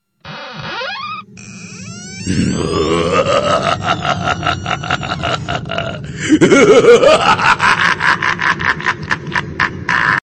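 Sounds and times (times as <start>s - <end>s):
person laughing: 2.6s - 10.2s.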